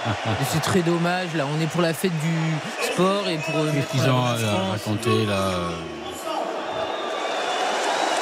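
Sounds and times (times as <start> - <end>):
laughter: 0.0 - 1.0
speech: 0.0 - 6.3
large stadium crowd cheering at a sports event in France: 0.0 - 8.2
individual voices in a stadium crowd: 0.2 - 6.4.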